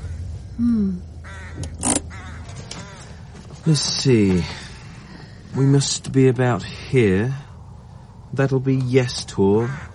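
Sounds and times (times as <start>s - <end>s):
crows cawing outdoors: 0.0s - 0.5s, 1.2s - 3.6s, 9.6s - 9.9s
low steady hum: 0.0s - 9.9s
speech: 0.6s - 2.0s, 3.6s - 4.6s, 5.5s - 7.5s, 8.4s - 9.9s.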